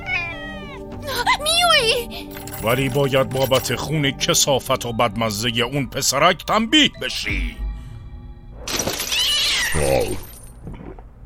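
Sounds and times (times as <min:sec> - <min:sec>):
cat meowing with rising and falling pitch: 0:00.0 - 0:00.9, 0:09.1 - 0:10.2
speech: 0:01.9 - 0:07.6.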